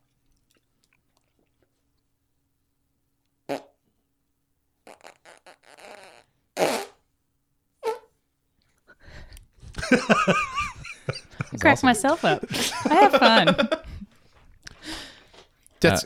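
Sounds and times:
speech: 0:03.5 - 0:03.7, 0:09.9 - 0:10.6, 0:11.6 - 0:13.8, 0:15.8 - 0:16.0
fake fart blown with the mouth against an arm: 0:03.5 - 0:03.8, 0:04.8 - 0:07.0, 0:07.8 - 0:08.1
laughter: 0:09.7 - 0:14.1.

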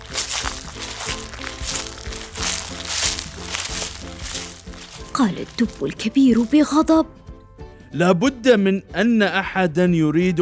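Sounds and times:
dry rustling and crinkling behind the trees: 0:00.0 - 0:06.8
steady music: 0:00.0 - 0:10.4
speech: 0:05.2 - 0:07.2, 0:07.9 - 0:10.4.

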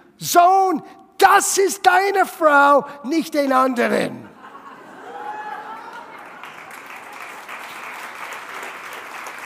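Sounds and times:
speech: 0:00.2 - 0:04.3
laughter: 0:04.2 - 0:07.1
audience applause: 0:05.1 - 0:09.4.

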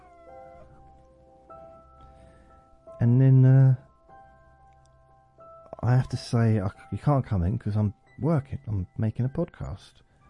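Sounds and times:
dog letting out drawn-out whining howls: 0:00.0 - 0:00.8
speech: 0:03.0 - 0:03.8, 0:05.9 - 0:10.0.

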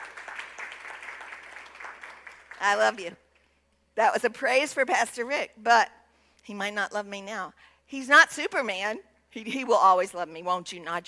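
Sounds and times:
church audience applauding: 0:00.0 - 0:02.9
speech: 0:02.6 - 0:03.2, 0:04.0 - 0:11.0.

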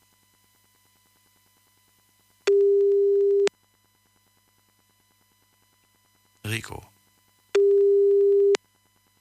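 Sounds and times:
telephone ringing tone on the line: 0:02.5 - 0:03.5, 0:07.6 - 0:08.6.

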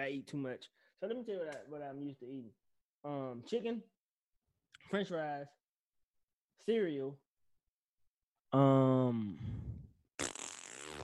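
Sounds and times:
speech: 0:00.0 - 0:04.0, 0:04.8 - 0:05.6, 0:06.6 - 0:07.2, 0:08.5 - 0:09.7
person imitating a fart with the mouth: 0:10.2 - 0:11.0.

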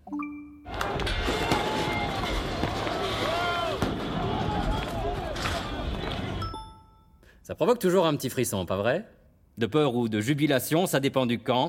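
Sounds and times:
dense protest crowd shouting and chanting: 0:00.7 - 0:06.4
speech: 0:07.5 - 0:11.6.

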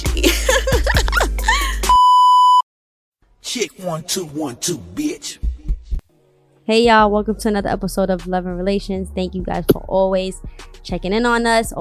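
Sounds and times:
laughter: 0:00.2 - 0:01.8
mid-pitched electronic beep: 0:01.9 - 0:02.6
speech: 0:03.6 - 0:05.5, 0:06.7 - 0:11.7.

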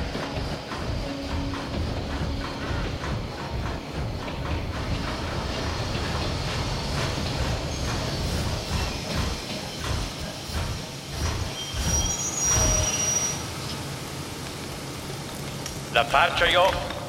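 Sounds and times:
express train pulling into a terminal station: 0:00.0 - 0:17.0
high squeal of express train: 0:06.8 - 0:13.8
speech: 0:16.0 - 0:16.9.

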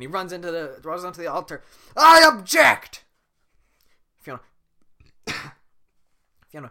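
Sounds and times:
speech: 0:00.0 - 0:03.0, 0:04.2 - 0:04.5, 0:06.5 - 0:06.7
person cough-burping to expel swallowed air: 0:05.2 - 0:05.7.

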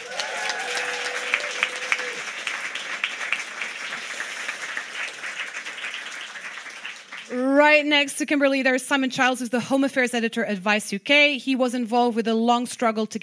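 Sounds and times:
whoops and cheers: 0:00.0 - 0:02.3
room full of people applauding: 0:00.0 - 0:07.5
speech: 0:07.6 - 0:13.2.

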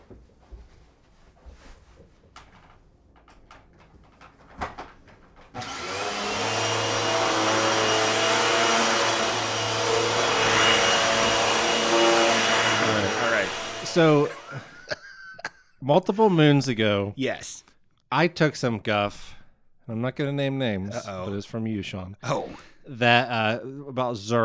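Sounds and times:
soft knocks and clatters: 0:00.0 - 0:05.6
vacuum cleaner running: 0:05.6 - 0:14.7
speech: 0:14.0 - 0:14.4, 0:15.9 - 0:24.4
laughter: 0:14.1 - 0:15.8.

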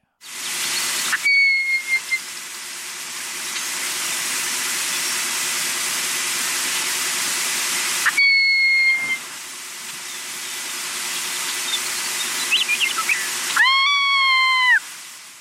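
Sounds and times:
steady loud hiss: 0:00.0 - 0:15.4
bird whistled chirps: 0:00.4 - 0:02.2, 0:08.0 - 0:09.2, 0:10.0 - 0:14.8.

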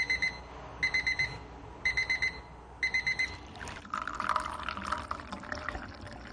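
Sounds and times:
tea-steeping timer beeping at a tea house in Portland: 0:00.0 - 0:03.5
liquid pouring: 0:03.4 - 0:06.3.

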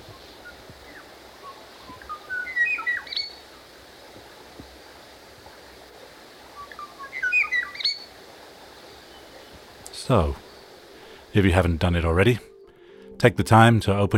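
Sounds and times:
Kauai oo whistling song: 0:00.0 - 0:03.5, 0:06.6 - 0:08.1
hiss: 0:00.0 - 0:14.1
speech: 0:10.1 - 0:10.4, 0:11.4 - 0:12.5, 0:13.2 - 0:14.1.

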